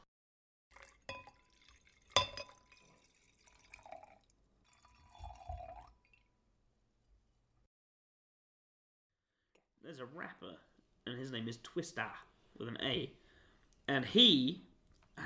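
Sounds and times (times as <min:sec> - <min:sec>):
liquid and sipping sounds: 0:00.7 - 0:06.3, 0:14.8 - 0:15.2
glasses of red wine clinking in a toast: 0:01.1 - 0:03.1
speech: 0:09.9 - 0:13.2, 0:13.9 - 0:15.2.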